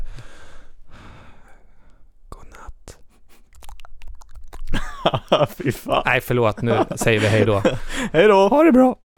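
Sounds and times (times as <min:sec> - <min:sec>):
heavy breathing into a microphone: 0:00.0 - 0:02.1, 0:07.3 - 0:08.2
speech: 0:05.0 - 0:09.0.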